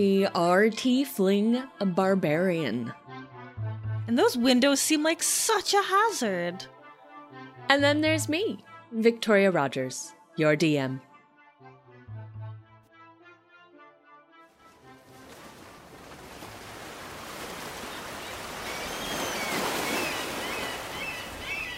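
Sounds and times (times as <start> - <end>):
speech: 0.0 - 3.0, 4.1 - 6.8, 7.7 - 11.1
soft tonal music: 0.0 - 16.7
sea waves lapping at harbor docks on a granite wharf: 14.6 - 21.7.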